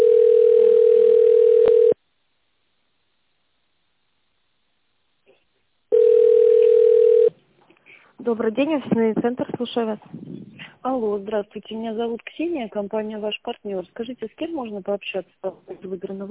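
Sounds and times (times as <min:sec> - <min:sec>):
telephone ringback tones while a call waits to connect to an operator: 0:00.0 - 0:02.0, 0:05.9 - 0:07.3
speech: 0:08.3 - 0:16.3.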